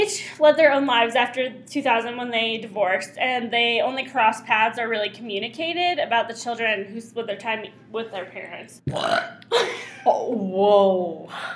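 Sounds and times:
speech: 0:00.0 - 0:11.5
throaty burp after drinking mimosas: 0:08.9 - 0:09.5.

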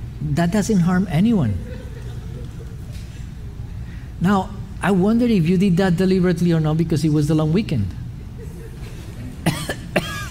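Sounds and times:
faint low hum: 0:00.0 - 0:10.3
speech: 0:00.2 - 0:01.8, 0:04.2 - 0:08.0
laughter: 0:01.5 - 0:03.7, 0:08.2 - 0:09.5
person coughing: 0:09.4 - 0:10.3.

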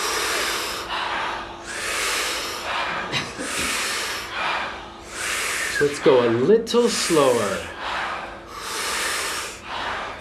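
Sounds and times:
rhythmic power breathing through the mouth: 0:00.0 - 0:10.1
speech: 0:05.8 - 0:07.8.

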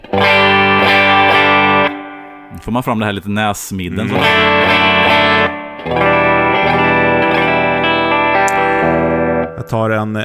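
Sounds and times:
overdriven electric guitar chord through an amplifier with a V30 speaker: 0:00.0 - 0:02.6, 0:04.1 - 0:09.7
speech: 0:02.6 - 0:04.9, 0:05.8 - 0:06.2, 0:09.6 - 0:10.2.

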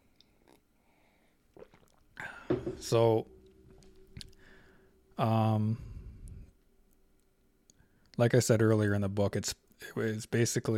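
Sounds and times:
person sipping water with wet gulping and swallowing: 0:01.4 - 0:02.7
speech: 0:02.5 - 0:03.4, 0:05.2 - 0:05.9, 0:08.2 - 0:10.7.

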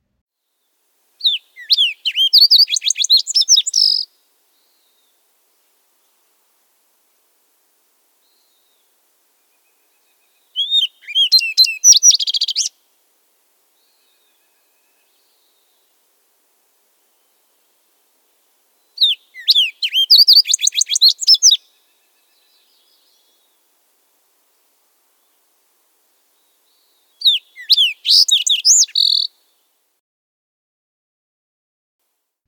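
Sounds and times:
fox sparrow song: 0:00.6 - 0:12.8, 0:13.6 - 0:17.8, 0:18.7 - 0:29.7.

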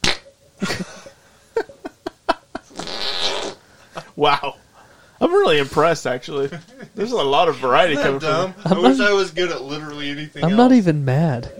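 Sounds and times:
wet squelchy armpit farts: 0:00.0 - 0:00.3, 0:02.7 - 0:03.6
speech: 0:04.2 - 0:04.6, 0:05.3 - 0:11.5.

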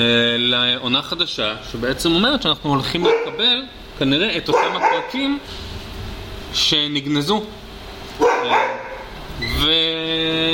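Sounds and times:
speech: 0:00.0 - 0:05.6, 0:06.5 - 0:07.6, 0:09.6 - 0:10.0
dog barking: 0:03.0 - 0:03.5, 0:04.5 - 0:05.2, 0:08.2 - 0:09.1.

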